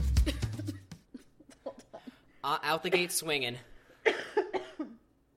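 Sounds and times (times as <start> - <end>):
person coughing harshly: 0.2 - 2.2, 2.9 - 3.2, 4.0 - 5.1
speech: 2.5 - 3.7.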